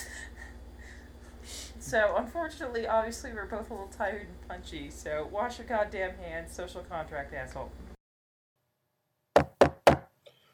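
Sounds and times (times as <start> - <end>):
speech: 1.9 - 7.8
sharp knocks on a door: 9.4 - 10.1.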